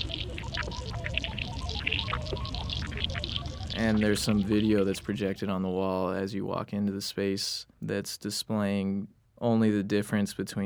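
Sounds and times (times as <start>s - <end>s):
chicken wing frying in hot mineral oil: 0.0s - 4.3s
speech: 3.8s - 10.6s.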